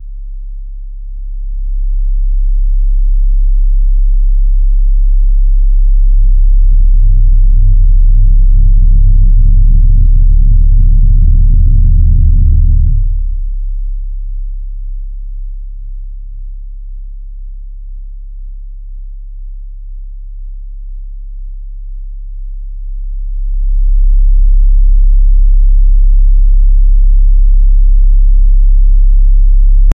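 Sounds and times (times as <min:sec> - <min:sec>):
deep rumbling sub bass: 0:00.0 - 0:29.9.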